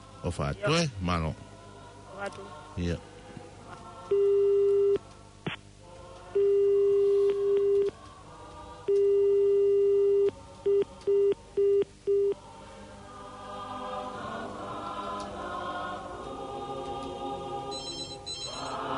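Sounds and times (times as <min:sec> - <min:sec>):
speech: 0:00.2 - 0:01.5, 0:02.2 - 0:03.1, 0:04.1 - 0:04.4
telephone busy signal electronic tone: 0:04.1 - 0:05.0, 0:06.4 - 0:07.9, 0:08.9 - 0:12.4, 0:17.7 - 0:18.8.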